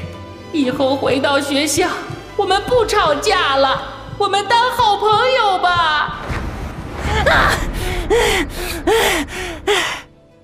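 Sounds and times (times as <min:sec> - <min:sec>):
speech: 0:00.5 - 0:06.4, 0:07.2 - 0:09.9
person panting heavily: 0:07.6 - 0:10.1.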